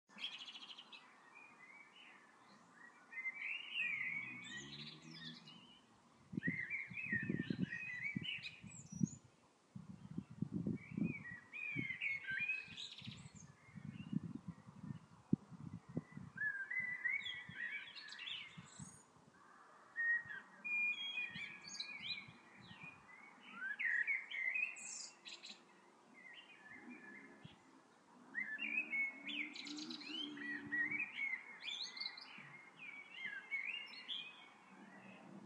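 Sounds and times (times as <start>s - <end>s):
birds singing outside: 0.1s - 9.2s, 9.8s - 35.4s.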